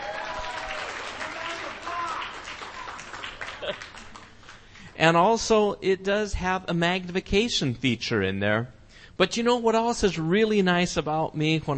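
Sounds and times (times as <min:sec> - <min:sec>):
crowd applauding: 0:00.0 - 0:04.8
speech: 0:05.0 - 0:11.7.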